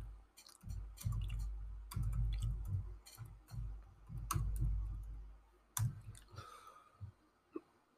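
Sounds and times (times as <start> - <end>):
typing on a laptop keyboard: 0.4 - 5.2, 5.8 - 6.3.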